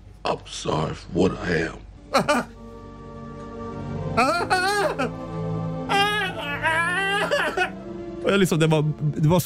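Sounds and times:
speech: 0.3s - 2.6s, 4.2s - 5.3s, 8.2s - 9.4s
person imitating uncontrollable ugly sobbing: 2.1s - 2.6s, 4.2s - 5.2s, 5.9s - 7.8s.

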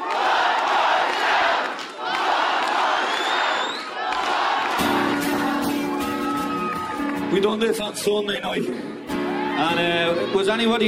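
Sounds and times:
large concert crowd chanting for an encore: 0.0s - 5.6s
concert crowd cheering and whooping: 0.0s - 7.4s, 9.1s - 10.6s
speech: 7.3s - 8.9s, 9.6s - 10.8s.

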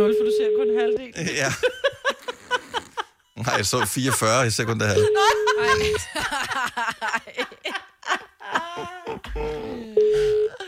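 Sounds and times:
electronic phone tone in short bursts: 0.0s - 1.1s, 4.9s - 6.0s, 10.0s - 10.6s
speech: 0.0s - 2.0s, 3.4s - 7.8s
several people laughing: 1.2s - 9.7s.

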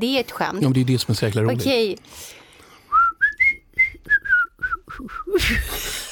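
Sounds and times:
speech: 0.0s - 2.4s, 5.0s - 6.0s
person whistling a short wavering tune: 2.9s - 5.4s
burst of noisy breath or laughter: 5.3s - 6.1s.

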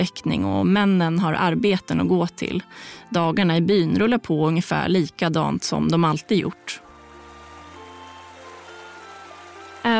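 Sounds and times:
speech: 0.0s - 6.8s
river water babbling alongside a village: 6.8s - 9.9s.

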